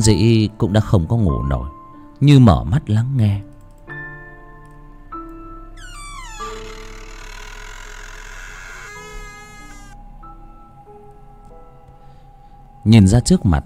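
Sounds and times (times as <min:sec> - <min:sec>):
speech: 0:00.0 - 0:03.5, 0:12.8 - 0:13.6
bedroom door creaking at midnight: 0:05.8 - 0:10.0.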